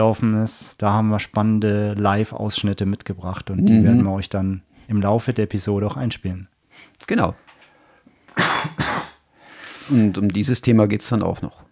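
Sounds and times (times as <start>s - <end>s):
speech: 0.0s - 7.4s, 9.9s - 11.6s
person coughing sharply: 3.6s - 4.1s, 8.4s - 9.2s.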